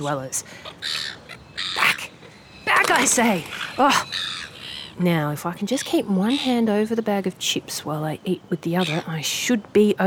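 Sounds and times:
speech: 0.0s - 1.2s, 2.9s - 4.3s, 5.0s - 10.0s
harsh raspy seagull calls: 0.0s - 7.0s, 8.7s - 9.2s
faint hiss: 0.0s - 10.0s.

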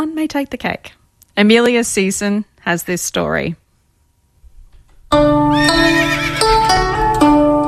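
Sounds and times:
speech: 0.0s - 3.6s, 5.1s - 6.5s
horse neighing loudly with a quavering whinny: 5.5s - 6.6s.

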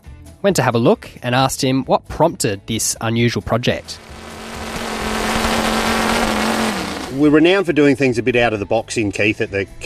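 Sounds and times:
speech: 0.4s - 4.1s, 7.2s - 9.8s
V8 car engine powered chainsaw revving: 3.8s - 7.5s.

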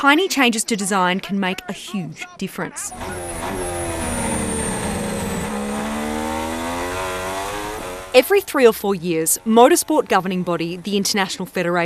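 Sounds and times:
speech: 0.0s - 3.7s, 8.2s - 11.8s
pack of Formula One cars accelerating from a race start: 2.9s - 8.8s.

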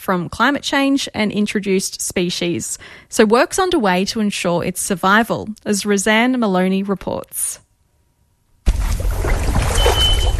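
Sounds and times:
speech: 0.0s - 7.6s
scientists wading through a tropical river north of Cairns Queensland: 8.7s - 10.3s.

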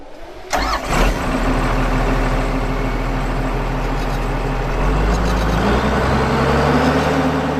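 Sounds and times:
power haul tractor engine idling with a deep low rumble: 0.5s - 5.6s
power haul tractor engine starting for the sugarcane harvest: 0.5s - 7.5s.

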